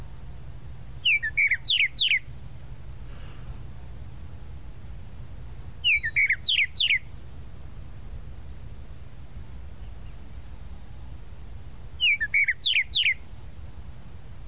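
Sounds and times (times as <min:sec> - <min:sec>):
tropical mockingbird giving sharp downslurred whistles: 0:01.0 - 0:02.3, 0:05.4 - 0:07.2, 0:10.0 - 0:11.0, 0:12.0 - 0:13.2.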